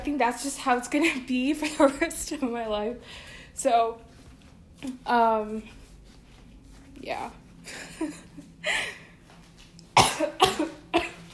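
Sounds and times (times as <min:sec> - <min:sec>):
speech: 0:00.1 - 0:04.1, 0:04.8 - 0:05.8, 0:07.0 - 0:08.9, 0:10.2 - 0:10.8
person coughing: 0:10.0 - 0:11.3.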